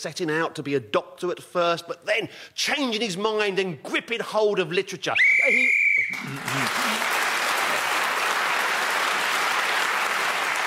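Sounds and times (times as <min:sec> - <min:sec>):
speech: 0:00.0 - 0:07.2
shrill whistle blast marking the end of a round: 0:05.2 - 0:06.2
audience applause: 0:06.1 - 0:10.6.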